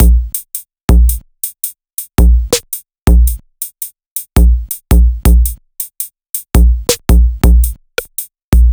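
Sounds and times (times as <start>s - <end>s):
distorted drum kit: 0.0s - 1.2s, 2.2s - 3.4s, 4.4s - 5.6s, 6.4s - 8.7s.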